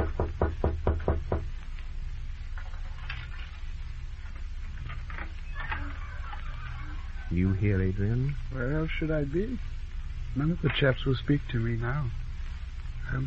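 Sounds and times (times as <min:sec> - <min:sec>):
knocking on a door: 0:00.0 - 0:01.5
continuous hum: 0:00.0 - 0:13.2
faint high calls: 0:04.8 - 0:07.9
speech: 0:07.3 - 0:12.2.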